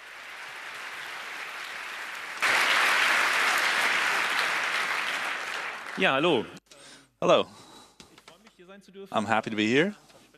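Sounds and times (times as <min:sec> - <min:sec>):
large crowd applauding: 0:00.0 - 0:06.6
speech: 0:06.0 - 0:06.6, 0:07.2 - 0:07.6, 0:08.8 - 0:10.0.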